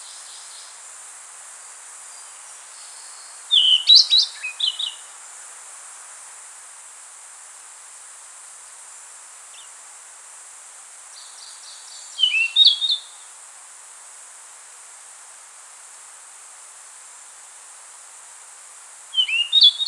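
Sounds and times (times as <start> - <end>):
steady hiss: 0.0 - 19.8
rufous-tailed flycatcher song: 3.6 - 5.0, 12.2 - 13.1, 19.2 - 19.8.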